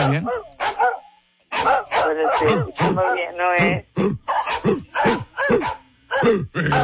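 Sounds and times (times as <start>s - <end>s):
speech: 0.0s - 0.5s, 2.1s - 6.8s
dog barking: 0.0s - 3.4s, 4.3s - 6.8s.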